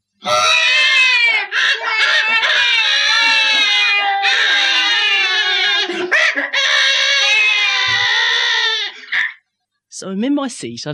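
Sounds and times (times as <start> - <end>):
children screaming and howling in a train carriage: 0.2 - 9.2
speech: 10.2 - 10.9.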